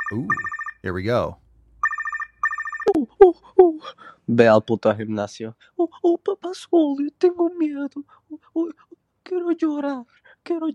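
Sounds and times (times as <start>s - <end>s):
telephone ringing in electronic trills: 0.0s - 1.0s, 1.8s - 2.9s
speech: 0.1s - 1.4s, 2.9s - 10.7s.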